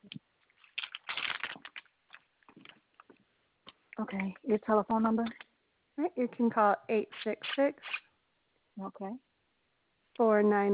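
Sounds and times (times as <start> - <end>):
paper being handled to write down a telephone number: 0.4 - 3.2
speech: 4.0 - 5.4, 6.0 - 8.0, 8.8 - 9.3, 10.2 - 10.7.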